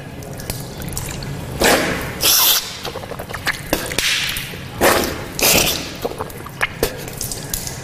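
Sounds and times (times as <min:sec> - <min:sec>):
water rinsed around the mouth: 0:00.2 - 0:07.8
snorting water drawn into the nose: 0:01.6 - 0:04.0, 0:04.6 - 0:07.6.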